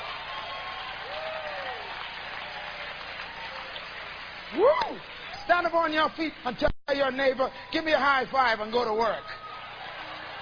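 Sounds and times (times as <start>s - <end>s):
crowd applauding: 0.0s - 5.7s, 9.3s - 10.3s
speech: 4.5s - 9.4s.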